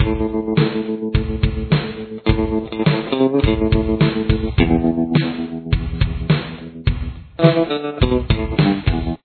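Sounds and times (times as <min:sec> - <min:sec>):
guitar playing a verse part: 0:00.0 - 0:09.2.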